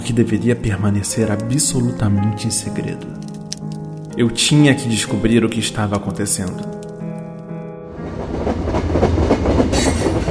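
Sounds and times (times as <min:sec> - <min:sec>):
speech: 0:00.1 - 0:03.4, 0:04.2 - 0:06.8
morning train to Sussex wheels clattering on rails: 0:08.1 - 0:10.2.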